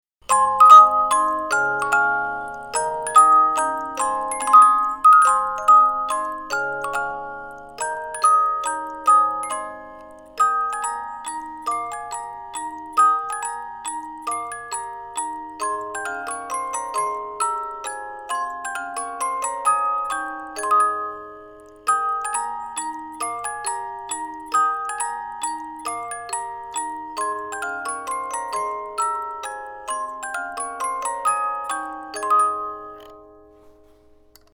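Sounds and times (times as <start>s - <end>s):
poorly tuned music box: 0.2s - 34.5s.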